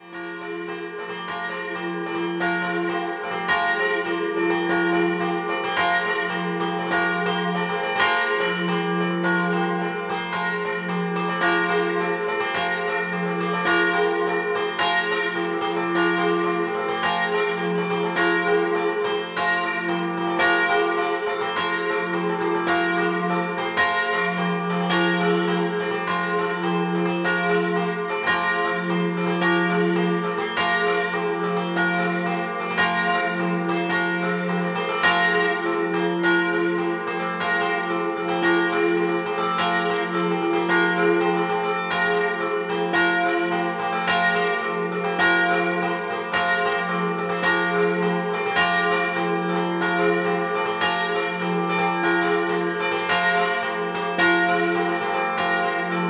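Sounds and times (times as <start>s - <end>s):
church bells chiming in a scampanottata: 0.0s - 56.0s.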